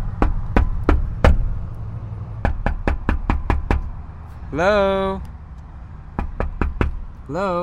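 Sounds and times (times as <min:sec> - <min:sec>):
low rumbling hum: 0:00.0 - 0:07.6
knuckles knocking on a wooden door: 0:00.2 - 0:01.5, 0:02.4 - 0:03.8, 0:06.2 - 0:07.0
speech: 0:04.5 - 0:05.3, 0:07.3 - 0:07.6.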